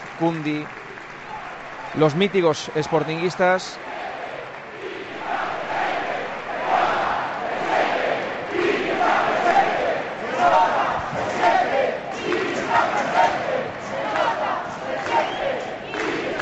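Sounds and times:
speech: 0:00.2 - 0:00.8, 0:01.9 - 0:03.9
large football crowd chanting a tribute in unison: 0:03.8 - 0:16.4.

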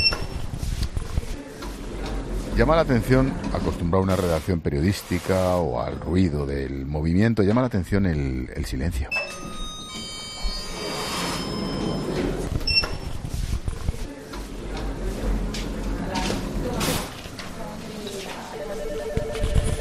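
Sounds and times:
murmur of office activity: 0:00.0 - 0:19.7
speech: 0:02.6 - 0:09.3
telephone ringing in an office: 0:09.1 - 0:12.9, 0:18.4 - 0:19.7.

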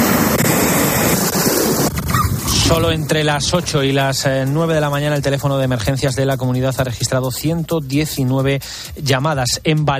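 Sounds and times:
early-morning hailstorm in Valencia: 0:00.0 - 0:04.1
speech: 0:02.7 - 0:09.9.

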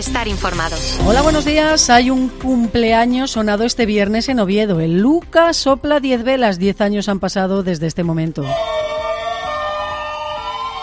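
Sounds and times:
speech: 0:00.0 - 0:08.8
ambulance sirens of a convoy crossing Oviedo: 0:08.4 - 0:10.8.

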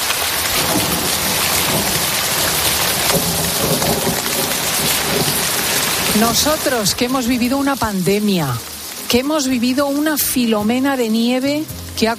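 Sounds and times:
heavy rainfall in a thunderstorm: 0:00.0 - 0:12.1
deep rumble of thunder: 0:00.4 - 0:08.1
speech: 0:06.2 - 0:12.1.

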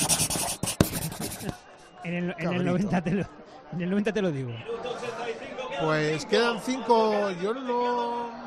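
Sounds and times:
pen being fiddled with against paper: 0:00.0 - 0:01.6
speech: 0:01.4 - 0:08.4.

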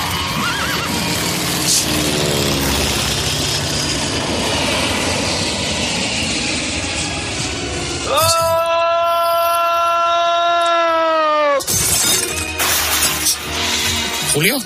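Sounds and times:
high whinny-like cry: 0:00.0 - 0:02.5, 0:08.0 - 0:11.7
helicopter engine and rotor noise overhead: 0:00.0 - 0:14.6
speech: 0:14.4 - 0:14.6.

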